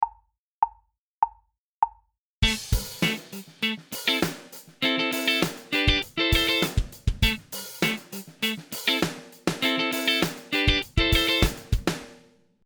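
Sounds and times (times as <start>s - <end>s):
funk accenting single notes and triads in A minor: 2.4s - 12.0s.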